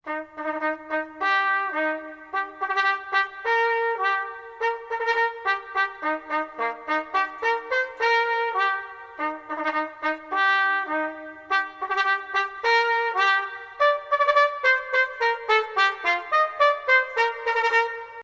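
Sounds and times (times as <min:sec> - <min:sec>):
trumpet: 0:00.0 - 0:18.2.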